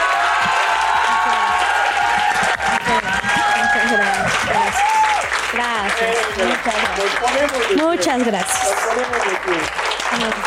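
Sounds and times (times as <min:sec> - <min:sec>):
crowd applauding: 0:00.0 - 0:10.4
speech: 0:05.5 - 0:10.4.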